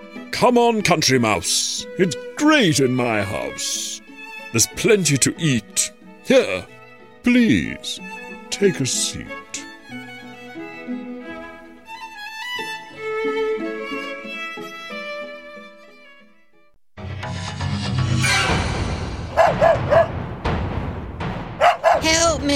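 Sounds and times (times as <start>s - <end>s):
light bouncy music: 0.0s - 17.4s, 18.2s - 22.5s
speech: 0.4s - 9.7s
dog barking with sharp yelps: 19.3s - 20.1s, 21.6s - 22.2s.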